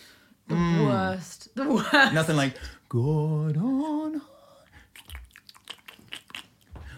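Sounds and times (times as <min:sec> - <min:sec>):
speech: 0:00.5 - 0:04.3
person chewing a mouthful of burger: 0:04.7 - 0:06.9.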